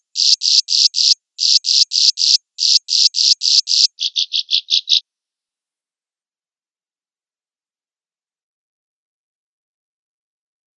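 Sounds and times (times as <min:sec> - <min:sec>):
swiftlet giving coarse buzzy and clicking chirps: 0:00.2 - 0:05.0.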